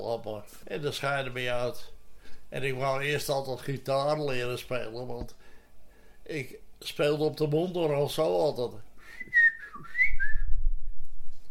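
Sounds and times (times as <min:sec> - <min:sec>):
speech: 0:00.1 - 0:05.5, 0:06.3 - 0:09.9
person whistling a short melodic phrase: 0:09.0 - 0:10.8.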